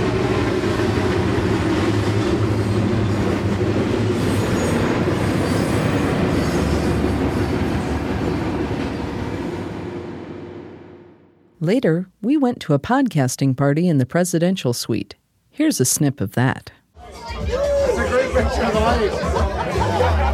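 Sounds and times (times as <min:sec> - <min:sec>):
train rumbling past an airport hotel: 0:00.0 - 0:11.5
speech: 0:11.7 - 0:17.7, 0:18.4 - 0:19.6
laughter: 0:17.2 - 0:20.3.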